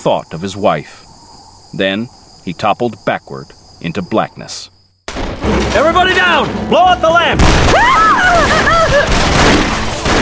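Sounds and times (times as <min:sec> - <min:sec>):
speech: 0:00.0 - 0:01.1, 0:01.7 - 0:04.8, 0:05.7 - 0:09.8
constant barrage of revolver gunfire in a shootout: 0:05.1 - 0:10.2.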